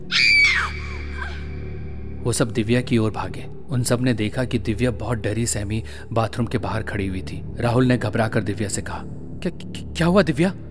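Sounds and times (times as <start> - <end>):
woman screaming in fright: 0.0 - 1.6
speech: 2.2 - 10.6.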